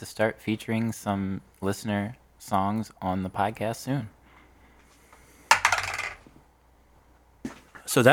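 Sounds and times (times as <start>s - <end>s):
speech: 0.0s - 4.2s, 7.9s - 8.1s
dice clattering onto a hard surface: 5.5s - 6.3s.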